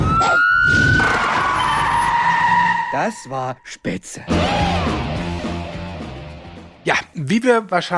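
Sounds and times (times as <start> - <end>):
police siren wailing: 0.0 - 3.4, 4.3 - 5.2
speech: 3.0 - 5.1, 6.8 - 7.9.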